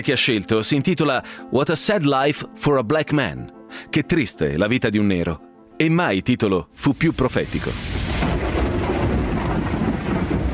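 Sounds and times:
speech: 0:00.0 - 0:08.0
heavy rain pouring during a southern-hemisphere winter: 0:07.0 - 0:10.5
deep low thunder rumble: 0:07.6 - 0:10.5.

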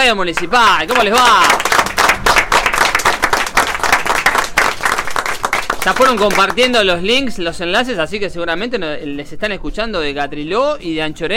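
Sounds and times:
speech: 0:00.1 - 0:01.8, 0:05.8 - 0:11.3
studio applause welcoming guests: 0:00.4 - 0:06.9.

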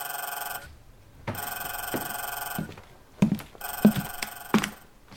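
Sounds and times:
old telephone bell ringing: 0:00.0 - 0:00.7, 0:01.3 - 0:02.7, 0:03.6 - 0:04.8.

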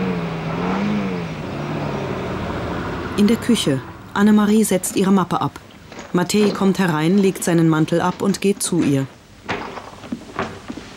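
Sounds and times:
car driving off: 0:00.0 - 0:04.5
speech: 0:03.2 - 0:09.2.

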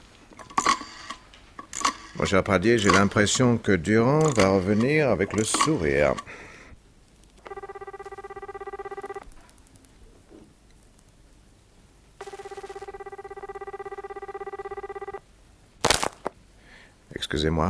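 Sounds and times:
telephone ringing with buzzing trills: 0:01.8 - 0:03.4, 0:04.2 - 0:06.2, 0:07.4 - 0:09.3, 0:12.2 - 0:15.2
speech: 0:02.2 - 0:06.5, 0:17.3 - 0:17.6.

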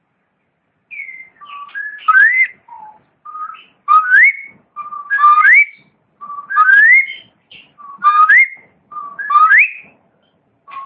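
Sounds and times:
long-tailed shrike singing short whistled phrases: 0:00.9 - 0:09.9, 0:10.7 - 0:10.8.

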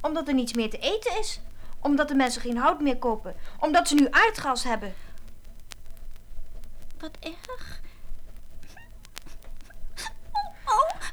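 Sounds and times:
speech: 0:00.0 - 0:05.0, 0:07.0 - 0:07.8
young girl whimpering and sobbing: 0:07.0 - 0:07.9, 0:08.7 - 0:11.1.

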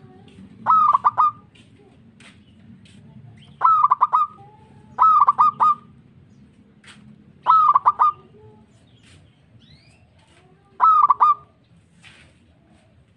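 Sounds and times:
zebra dove cooing: 0:00.0 - 0:01.5, 0:03.5 - 0:05.9, 0:07.4 - 0:08.7, 0:10.8 - 0:11.5.

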